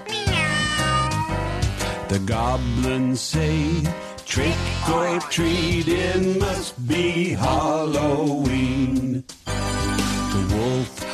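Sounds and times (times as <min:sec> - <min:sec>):
cat meowing with a wavering whiny pitch: 0:00.0 - 0:01.9
backing music with steady drum hits: 0:01.3 - 0:11.1
speech: 0:02.1 - 0:09.4, 0:10.4 - 0:11.1.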